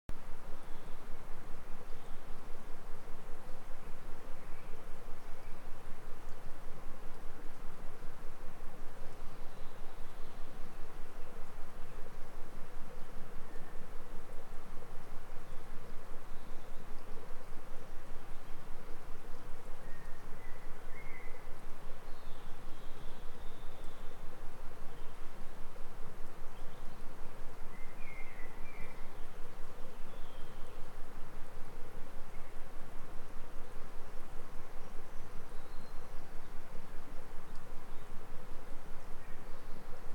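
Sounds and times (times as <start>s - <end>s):
morning forest ambience: 0.1s - 40.1s.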